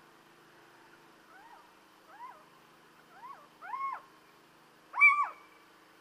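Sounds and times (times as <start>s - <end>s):
Little owl giving short arched mewing calls and yelps: 0.8s - 4.2s, 4.9s - 5.6s.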